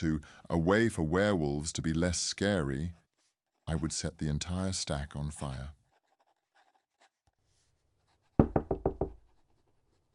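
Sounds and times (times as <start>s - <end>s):
speech: 0.0s - 3.0s, 3.7s - 5.8s
firm knocks on a wooden door: 8.4s - 9.2s.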